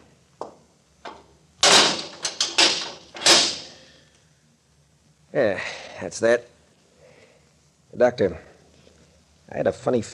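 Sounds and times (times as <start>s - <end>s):
morgue door and its lock clunking and rattling: 1.1s - 3.7s
morgue door lock clicking: 1.6s - 3.7s
speech: 5.3s - 6.5s, 8.0s - 8.5s, 9.5s - 10.1s.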